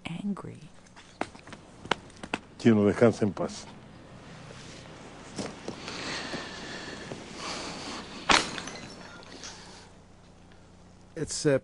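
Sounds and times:
speech: 0.3s - 0.7s, 2.6s - 3.8s, 11.2s - 11.6s
faint clinks and scrapes: 7.9s - 9.9s
glass bottle smashed at a cemetery during a graveside ritual: 8.3s - 9.6s.

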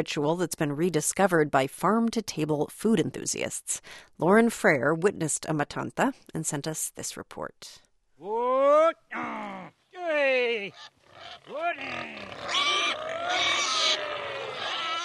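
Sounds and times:
speech: 0.0s - 9.4s, 10.5s - 14.0s
farmer calling out to black pigs: 8.2s - 10.8s, 11.5s - 12.3s
fat black pigs grunting and chomping acorns under cork trees: 10.7s - 15.0s.

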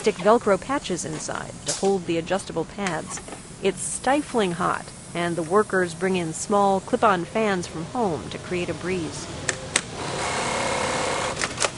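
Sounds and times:
speech: 0.0s - 9.5s
sewing machines stitching camouflage cloth helmet covers in a factory: 9.9s - 11.7s.

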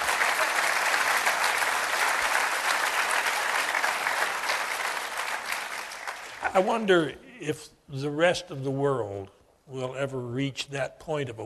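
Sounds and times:
audience applause: 0.0s - 6.7s
speech: 6.5s - 11.4s.

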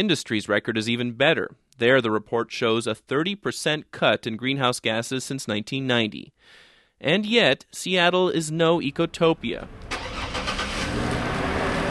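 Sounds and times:
speech: 0.0s - 9.9s
car traffic in a city outside a coffee shop in West Seattle: 8.9s - 11.9s.

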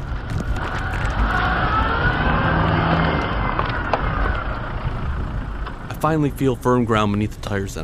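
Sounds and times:
car engine revving while reversing up a rough road: 0.1s - 7.0s
speech: 6.0s - 7.8s.

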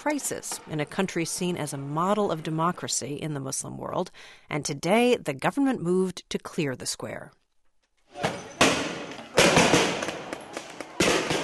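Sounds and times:
speech: 0.0s - 7.4s
tear gas launcher bangs fired by police at protesters in Taksim Square Istanbul: 8.6s - 10.2s.

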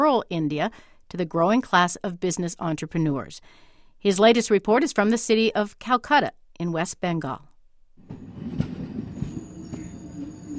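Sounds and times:
speech: 0.0s - 7.5s
train rolling along the rails: 8.0s - 10.5s.

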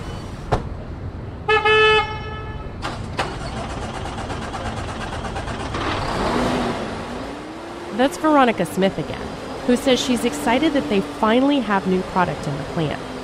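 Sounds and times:
newly built truck horn toot: 1.5s - 2.8s
newly built truck engine starting at end of final assembly line: 2.8s - 13.2s
speech: 8.0s - 13.1s.

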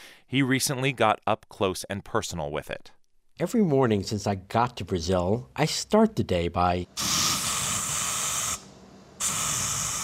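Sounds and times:
speech: 0.3s - 7.2s
bug spray hissing from an aerosol can: 7.0s - 10.0s.

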